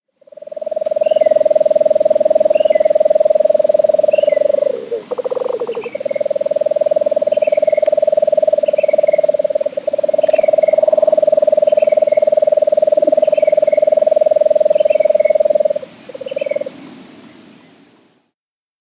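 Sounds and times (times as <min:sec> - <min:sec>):
Lesser Nighthawk calling: 0:00.5 - 0:16.7.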